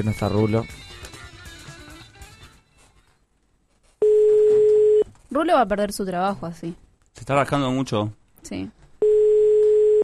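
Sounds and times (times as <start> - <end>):
speech: 0.0 - 0.8, 5.4 - 8.8
telephone dial tone while placing a call: 4.0 - 5.0, 9.0 - 10.0.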